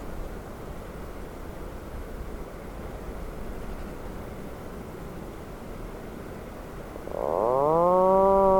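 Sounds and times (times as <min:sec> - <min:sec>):
Atlantic puffin moaning call: 0:07.1 - 0:08.5.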